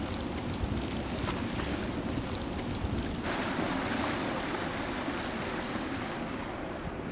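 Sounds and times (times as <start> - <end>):
water sloshing and splashing in an indoor swimming pool: 0.0 - 7.1.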